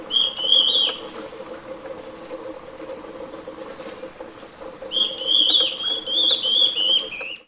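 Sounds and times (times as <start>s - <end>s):
adult male stripe-backed antbird Myrmorchilus strigilatus calling in Chaco, Argentina: 0.0s - 2.7s, 4.8s - 7.4s
steady low hum: 0.0s - 7.4s.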